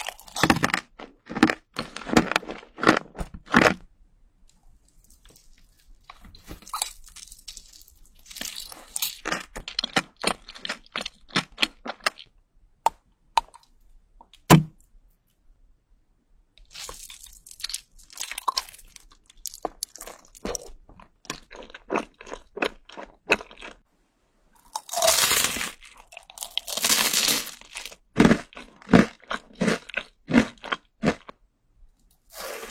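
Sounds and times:
crisp chewing with crunching bites: 0.0 - 3.9, 4.5 - 12.4, 16.6 - 23.8, 24.6 - 31.3.

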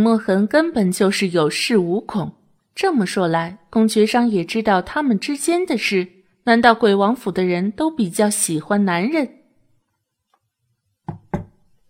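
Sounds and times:
speech: 0.0 - 9.4
knocking on a door: 11.0 - 11.7.

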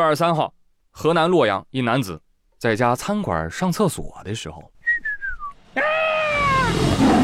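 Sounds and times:
speech: 0.0 - 4.7
faint higher cry: 5.8 - 7.2
tiger roaring beside a restaurant next to a tiger park: 6.1 - 7.2.

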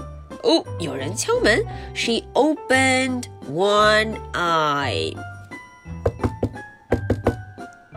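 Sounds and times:
speech: 0.4 - 5.3
firm knocks on a door: 6.0 - 7.6.

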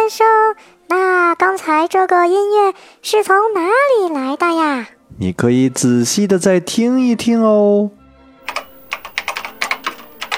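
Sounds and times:
speech: 0.1 - 0.8, 1.7 - 8.6
typing on a computer keyboard: 8.5 - 10.3.

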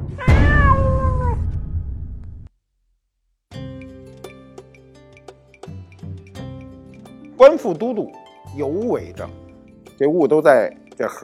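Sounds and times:
stray cat meowing: 0.2 - 1.5
speech: 7.6 - 9.4, 10.0 - 11.2.

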